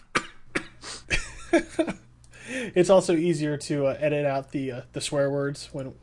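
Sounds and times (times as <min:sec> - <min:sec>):
person coughing in short harsh bursts: 0:00.1 - 0:02.0
speech: 0:01.5 - 0:06.0.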